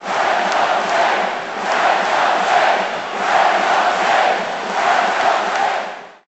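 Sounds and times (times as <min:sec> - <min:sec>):
basketball crowd chanting: 0:00.0 - 0:06.2.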